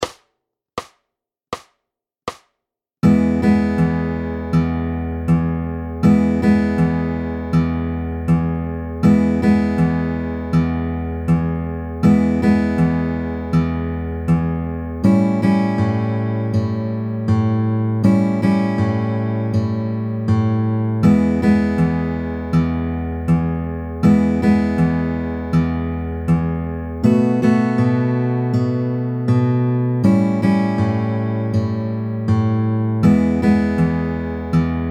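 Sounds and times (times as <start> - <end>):
fingerpicked slow 12 bar blues: 3.0 - 34.8.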